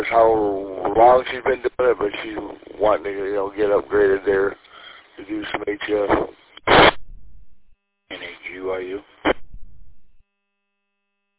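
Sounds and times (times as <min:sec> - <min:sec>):
burst of radio static: 0:00.0 - 0:04.6, 0:05.2 - 0:07.4, 0:08.1 - 0:10.2
speech: 0:00.0 - 0:04.6, 0:05.2 - 0:06.8, 0:08.2 - 0:09.1.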